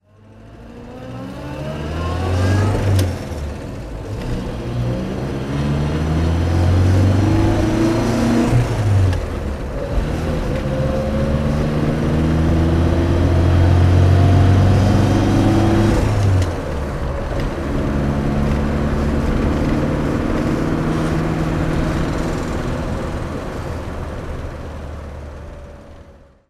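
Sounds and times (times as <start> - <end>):
Ford Anglia car driving: 0.0 - 26.4.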